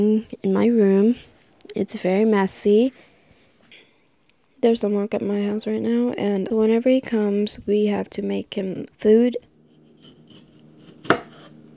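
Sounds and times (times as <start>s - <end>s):
speech: 0.0s - 3.1s, 4.6s - 9.5s
knife chopping tomatoes on a cutting board: 9.8s - 11.6s.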